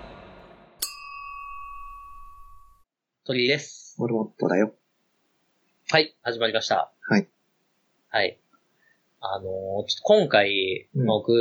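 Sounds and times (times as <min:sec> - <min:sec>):
glasses clinking in a toast: 0:00.8 - 0:02.4
speech: 0:03.3 - 0:04.8, 0:05.9 - 0:07.4, 0:08.1 - 0:08.4, 0:09.2 - 0:11.3.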